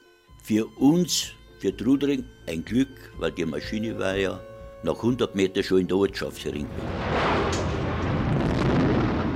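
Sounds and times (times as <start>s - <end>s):
speech: 0.5s - 7.3s
truck fuel tank exploding at a plane crash site near Trudering: 6.7s - 9.3s.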